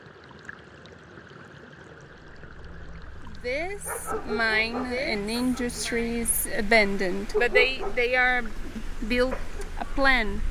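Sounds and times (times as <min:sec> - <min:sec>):
rainwater stream flowing under a bridge in a neighborhood: 0:00.0 - 0:10.4
speech: 0:03.4 - 0:10.4.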